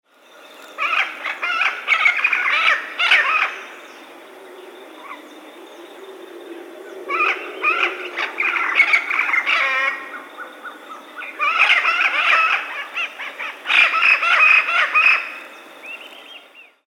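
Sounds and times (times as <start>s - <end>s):
Amazona vinacea parrot: 0.8s - 3.6s, 7.1s - 15.4s.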